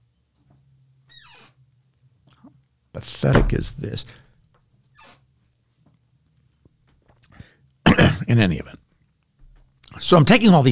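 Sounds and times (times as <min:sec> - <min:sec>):
low steady hum: 0:00.0 - 0:10.7
chair creaking as it shifts: 0:01.1 - 0:01.6, 0:05.0 - 0:05.2
speech: 0:03.0 - 0:04.2, 0:08.3 - 0:08.8, 0:10.1 - 0:10.7.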